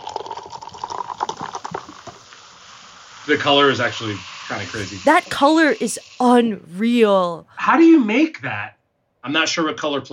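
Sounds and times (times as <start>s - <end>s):
tropical drink poured into a glass: 0.0s - 1.9s
speech: 3.3s - 10.1s.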